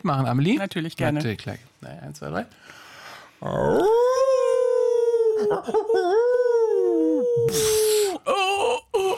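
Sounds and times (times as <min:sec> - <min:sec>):
speech: 0:00.0 - 0:04.2, 0:05.4 - 0:08.4
two radio hosts imitating a wolf howl with their voices: 0:03.5 - 0:08.8.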